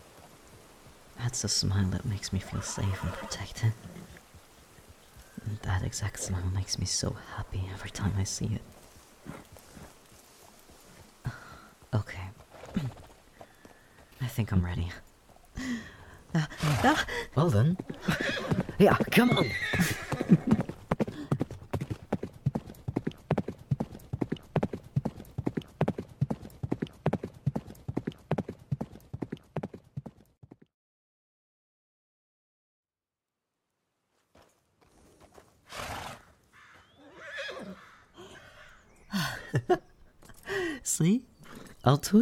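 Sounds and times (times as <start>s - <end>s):
horse hooves clip-clopping as a person rides the horse: 0.0s - 30.6s, 34.1s - 37.0s, 39.5s - 40.5s
speech: 1.3s - 4.2s, 5.5s - 8.7s, 14.4s - 15.1s, 16.6s - 18.2s, 18.8s - 20.0s, 42.0s - 42.2s
horse neighing: 2.5s - 4.2s, 16.3s - 21.6s, 35.7s - 39.0s.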